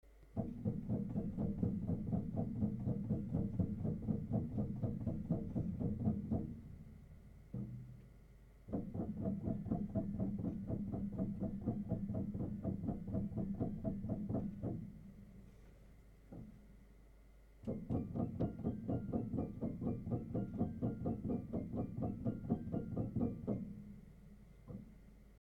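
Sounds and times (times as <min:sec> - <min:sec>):
noise: 0:00.0 - 0:25.4.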